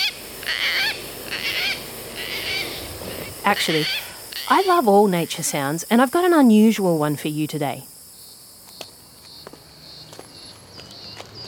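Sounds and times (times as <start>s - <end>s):
gang-gang cockatoo croaking: 0.0s - 5.0s
faint background hiss: 0.0s - 11.3s
speech: 3.4s - 7.9s.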